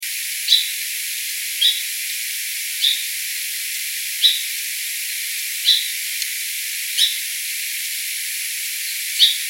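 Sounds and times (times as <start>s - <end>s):
faint steady hiss: 0.0s - 9.4s
song sparrow chip calls: 0.4s - 0.8s, 1.6s - 1.9s, 2.8s - 3.1s, 4.2s - 4.5s, 5.6s - 6.3s, 7.0s - 7.2s, 8.8s - 9.4s.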